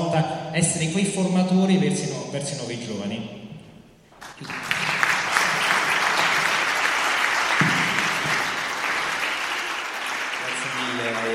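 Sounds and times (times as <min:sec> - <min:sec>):
speech: 0:00.2 - 0:03.4, 0:04.2 - 0:04.7
warm sustained audience applause welcoming a speaker: 0:04.1 - 0:11.3.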